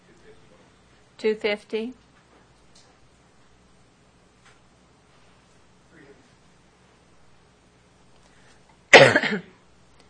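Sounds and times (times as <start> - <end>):
speech: 1.2 - 2.0
auctioneer coughing during bidding at an auction: 8.9 - 9.6.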